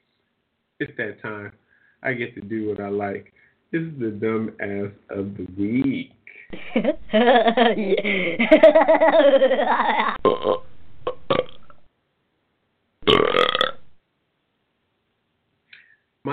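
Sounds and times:
speech: 0.8s - 10.6s
laughter: 6.5s - 10.2s
person burping: 9.6s - 11.8s, 13.0s - 14.0s.

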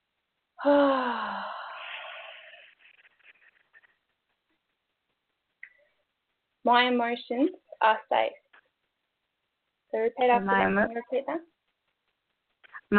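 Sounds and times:
speech: 0.6s - 1.2s, 6.7s - 8.4s, 9.9s - 11.5s
person taking a long deep breath in: 0.6s - 2.7s.

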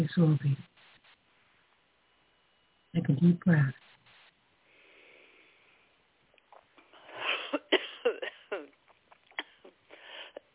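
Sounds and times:
speech: 0.0s - 0.7s, 2.9s - 3.8s
person coughing: 7.2s - 8.8s.

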